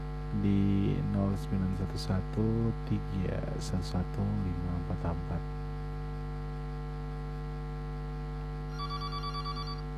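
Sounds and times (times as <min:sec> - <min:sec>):
steady low electrical hum: 0:00.0 - 0:09.9
speech: 0:00.4 - 0:05.6
telephone ringing for an incoming call: 0:08.7 - 0:09.9.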